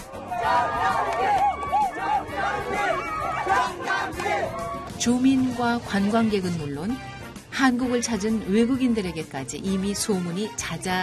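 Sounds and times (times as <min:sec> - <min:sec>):
enthusiastic crowd cheering at water festival: 0:00.0 - 0:05.1
speech: 0:05.0 - 0:11.0.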